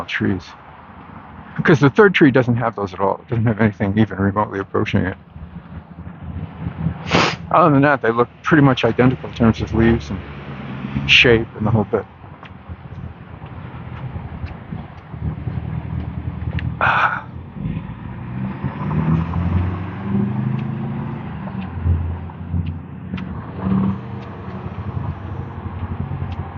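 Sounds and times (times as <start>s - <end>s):
speech: 0.0s - 0.6s, 1.6s - 5.3s, 7.0s - 10.3s, 11.0s - 12.1s
heavy trucks rumbling past outside the front of a house: 0.0s - 26.5s
wind buffeting the microphone: 3.3s - 26.5s
brief hiss: 7.1s - 7.4s.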